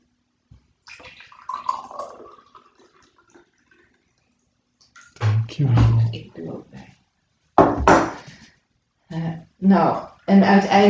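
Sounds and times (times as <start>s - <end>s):
drinking water pouring into a glass: 0.8s - 4.2s
speech: 5.6s - 6.9s, 9.7s - 10.8s.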